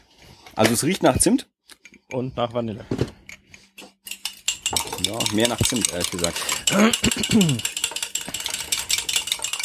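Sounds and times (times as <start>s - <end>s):
speech: 0.6s - 1.5s, 2.1s - 3.0s, 5.0s - 7.7s
utensil clinking against a bowl while stirring a vanilla and cinnamon mixture: 4.0s - 9.6s.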